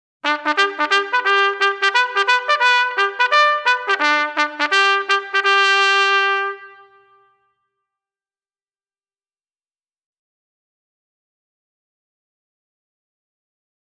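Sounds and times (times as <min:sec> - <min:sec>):
bugle call: 0:00.2 - 0:07.4.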